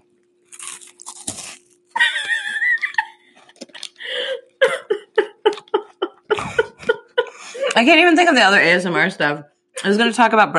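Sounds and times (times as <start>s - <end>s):
crunching bite of a chocolate nut candy bar: 0.4s - 2.0s
laughter: 2.0s - 3.3s, 4.6s - 7.8s
speech: 7.8s - 10.5s.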